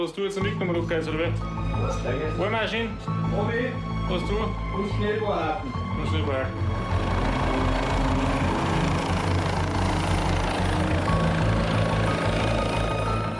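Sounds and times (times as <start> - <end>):
speech: 0.0 - 7.6
helicopter engine whine: 5.6 - 13.3
helicopter deep rotor thrum: 6.4 - 13.3.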